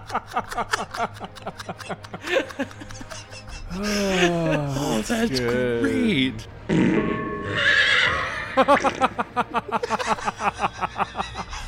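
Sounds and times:
laughter: 0.0s - 6.3s, 8.5s - 11.6s
speech: 0.1s - 11.0s
horse whinnying: 7.1s - 8.6s.

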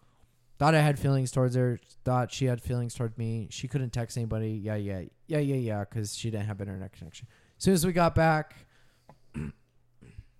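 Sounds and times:
speech: 0.6s - 8.7s, 9.3s - 9.6s
low guttural burp: 9.3s - 10.3s.

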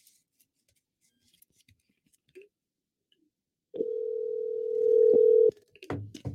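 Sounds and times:
telephone dial tone: 3.8s - 5.5s.

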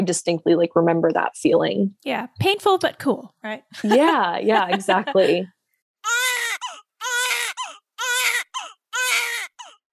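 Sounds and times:
speech: 0.0s - 6.2s
laughter: 3.8s - 5.5s
infant crying in rhythmic wails: 6.0s - 9.9s.

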